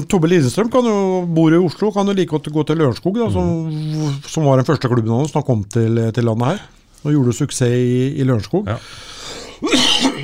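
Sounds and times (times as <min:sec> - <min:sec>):
speech: 0:00.0 - 0:10.2
single sharp sneeze: 0:09.6 - 0:10.2.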